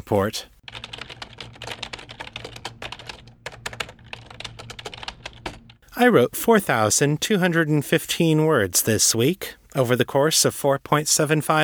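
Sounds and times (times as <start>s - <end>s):
speech: 0.1s - 0.5s, 6.0s - 11.6s
typing on a computer keyboard: 0.7s - 5.8s.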